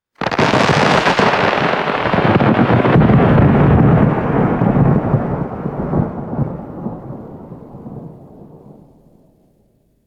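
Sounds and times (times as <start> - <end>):
close thunder crack: 0.2 - 9.4.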